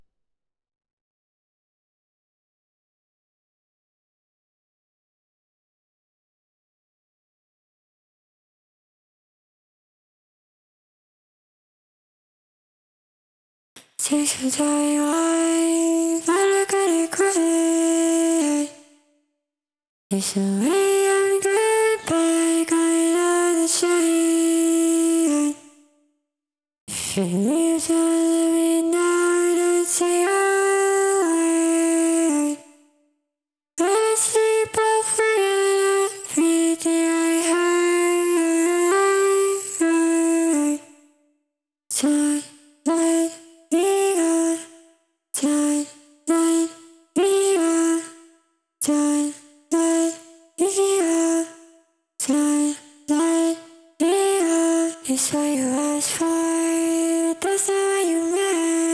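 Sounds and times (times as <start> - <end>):
clean vocal singing: 13.8 - 18.9, 20.1 - 25.7, 26.9 - 32.7, 33.8 - 40.9, 41.9 - 44.8, 45.4 - 48.2, 48.8 - 51.6, 52.2 - 58.9.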